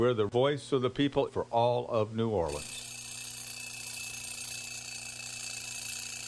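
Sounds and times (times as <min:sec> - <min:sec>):
speech: 0:00.0 - 0:02.8
alarm clock ringing with harsh bright jangle: 0:02.5 - 0:06.2.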